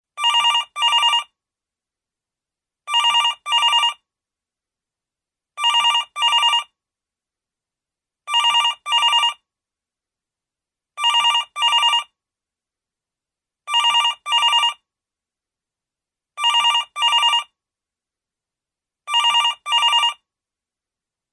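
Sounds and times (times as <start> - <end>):
landline telephone: 0.2 - 1.4, 2.9 - 4.0, 5.6 - 6.8, 8.3 - 9.4, 11.0 - 12.2, 13.7 - 14.8, 16.4 - 17.6, 19.1 - 20.2.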